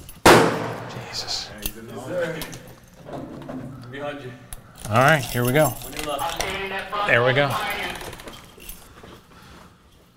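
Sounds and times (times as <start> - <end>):
keys jangling while unlocking a school door: 0.0 - 0.2, 4.4 - 6.7, 7.5 - 9.3
speech: 1.1 - 2.7, 4.0 - 7.9.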